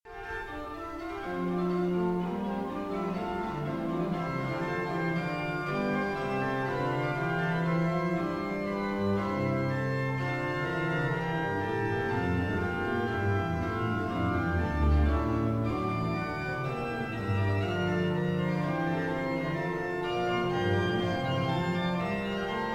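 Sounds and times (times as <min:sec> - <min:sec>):
organ piece: 0:00.1 - 0:22.7.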